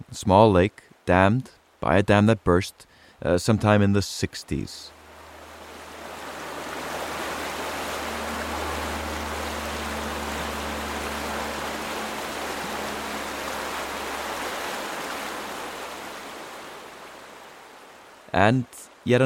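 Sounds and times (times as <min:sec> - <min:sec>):
speech: 0:00.1 - 0:05.0, 0:18.4 - 0:19.2
river torrent roaring: 0:04.9 - 0:19.0.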